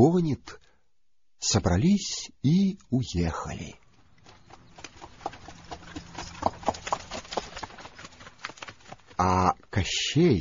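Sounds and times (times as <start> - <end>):
speech: 0.0 - 0.6, 1.4 - 3.8, 9.2 - 10.3
horse hooves clip-clopping as the horse stumbles: 3.8 - 9.8.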